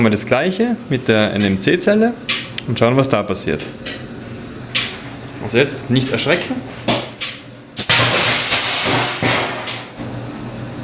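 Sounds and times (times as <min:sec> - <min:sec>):
speech: 0:00.0 - 0:04.0, 0:05.4 - 0:06.8
lithium battery cell bursting with a sharp bang: 0:07.8 - 0:09.7.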